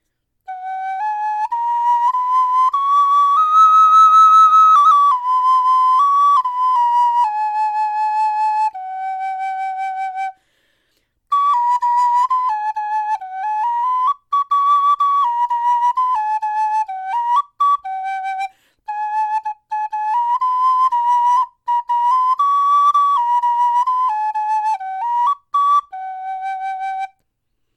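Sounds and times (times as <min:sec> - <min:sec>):
kindergarten recorder playing: 0:00.5 - 0:10.3, 0:11.3 - 0:27.2.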